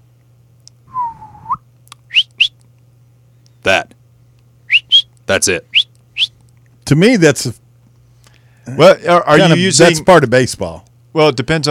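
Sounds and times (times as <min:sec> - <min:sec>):
faint steady low hum: 0:00.0 - 0:11.7
high chirping whistles: 0:00.9 - 0:02.6, 0:04.7 - 0:05.1, 0:05.7 - 0:06.4
whistled note dipping and rising: 0:00.9 - 0:02.6, 0:04.7 - 0:05.1
speech: 0:05.3 - 0:06.3, 0:06.9 - 0:07.6, 0:08.7 - 0:11.7.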